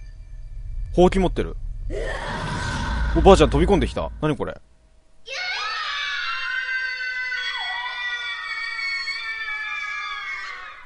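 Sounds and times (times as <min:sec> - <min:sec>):
speech: 0:01.0 - 0:02.3, 0:03.1 - 0:05.4
long high scream in a video game: 0:01.9 - 0:04.2, 0:05.3 - 0:10.8.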